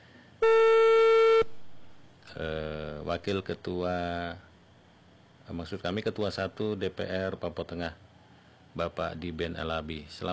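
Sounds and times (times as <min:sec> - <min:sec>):
telephone line tone as a call is placed: 0:00.4 - 0:01.5
speech: 0:02.4 - 0:04.5, 0:05.5 - 0:08.0, 0:08.7 - 0:10.3.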